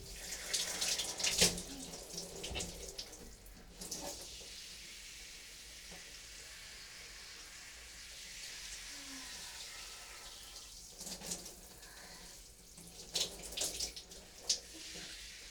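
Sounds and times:
shower water rinsing conditioner out of hair in a cramped hotel bathroom: 0.0s - 15.4s.

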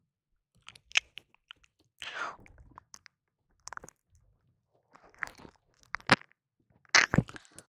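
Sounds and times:
ASMR mouth sounds of biting and nibbling an ear: 0.6s - 4.2s, 4.9s - 7.6s.

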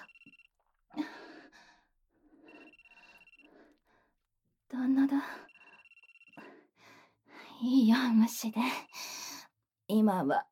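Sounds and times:
electronic telephone ringing: 0.0s - 0.6s, 2.5s - 3.5s, 5.4s - 6.4s
speech: 4.7s - 5.4s, 7.6s - 9.1s, 9.9s - 10.5s.

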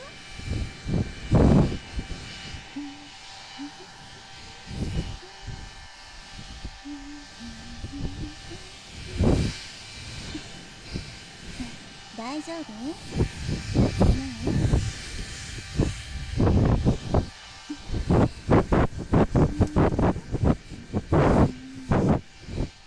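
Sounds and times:
hair dryer blowing to dry someone's hair: 0.0s - 22.8s
faint voice murmuring: 2.6s - 13.2s, 14.0s - 14.8s, 17.7s - 18.4s, 19.2s - 22.7s
speech: 12.4s - 13.2s.

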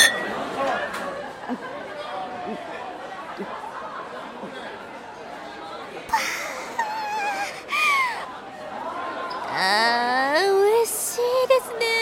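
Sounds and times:
beer glasses clinking in a toast: 0.0s - 0.6s
laughter: 0.0s - 5.0s, 6.0s - 9.9s
chatter and murmuring from a lively crowd: 0.0s - 12.0s.

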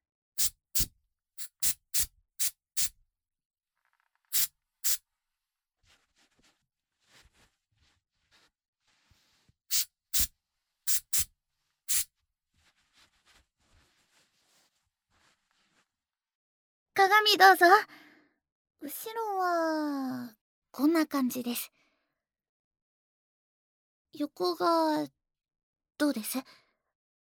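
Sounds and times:
hair spray hissing while setting a customer's hair: 0.4s - 2.9s, 4.3s - 5.0s, 9.7s - 10.3s, 10.9s - 11.3s, 11.9s - 12.1s
quiet rustling: 5.8s - 9.6s, 12.5s - 16.0s
speech: 17.0s - 18.0s, 18.8s - 21.8s, 24.2s - 25.2s, 26.0s - 26.6s.

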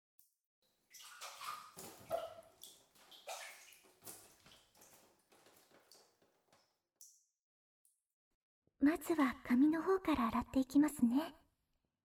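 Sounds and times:
bathtub water sloshing and splashing as someone rises out: 0.6s - 6.8s
speech: 8.8s - 11.4s.

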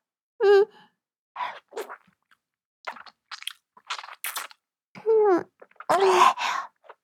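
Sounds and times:
person chewing rich food: 1.6s - 2.0s, 2.9s - 4.6s, 5.6s - 7.0s.

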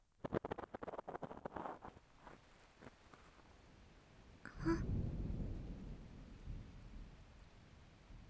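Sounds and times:
steady rain pattering and hissing: 0.3s - 8.2s
deep thunder rumble: 4.5s - 8.2s.

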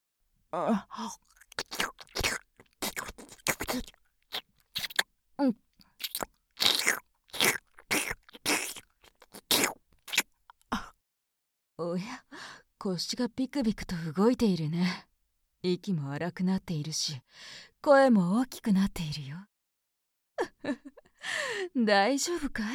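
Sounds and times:
speech: 0.5s - 1.8s, 3.7s - 4.0s, 5.4s - 5.6s, 11.8s - 12.2s, 12.8s - 19.5s, 20.4s - 22.7s
ASMR mouth sounds of biting and chewing on an ear: 1.2s - 5.1s, 5.8s - 10.4s.

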